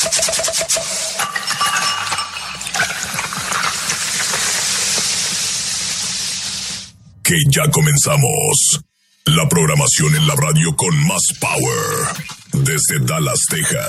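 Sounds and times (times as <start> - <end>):
fizzing hiss of beer bottle being opened: 0.2 - 6.9
speech: 7.3 - 13.8.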